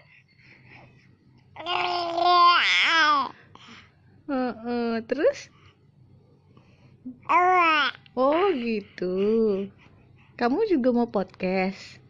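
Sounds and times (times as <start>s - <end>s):
faint hum: 0.0s - 12.0s
baby babbling: 1.6s - 3.3s, 7.2s - 8.0s
speech: 5.1s - 5.6s, 8.2s - 9.8s, 10.4s - 12.0s.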